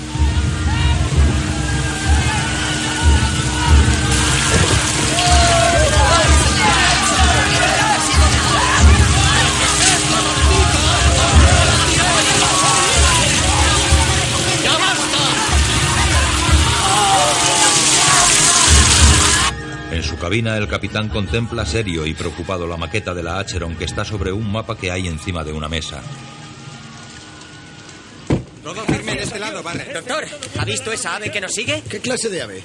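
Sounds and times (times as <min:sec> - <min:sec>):
rain pouring onto a sailing frigate speeding through the sea in strong wind: 0:00.0 - 0:19.8, 0:25.0 - 0:32.6
many voices shouting and cheering: 0:00.0 - 0:29.5
speech: 0:20.4 - 0:26.4, 0:28.6 - 0:32.6.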